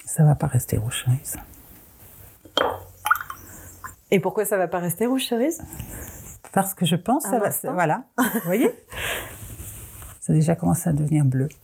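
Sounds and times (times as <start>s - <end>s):
speech: 0.2s - 1.6s, 4.1s - 9.0s, 10.3s - 11.6s
cherry-red liquid dripping from a pipette into glass containers of solutions: 2.5s - 4.0s.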